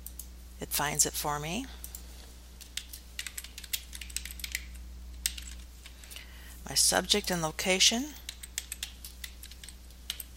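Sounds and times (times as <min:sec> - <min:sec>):
low steady hum: 0:00.0 - 0:10.3
speech: 0:00.6 - 0:01.8, 0:06.7 - 0:08.2
typing on a computer keyboard: 0:02.6 - 0:06.0, 0:08.2 - 0:10.3.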